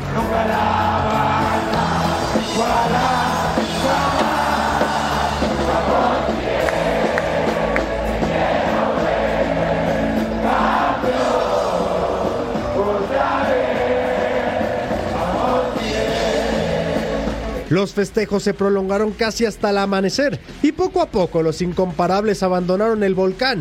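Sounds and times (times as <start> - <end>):
stadium crowd of football fans cheering in an ovation for champions: 0.0 - 17.8
speech: 17.8 - 23.5.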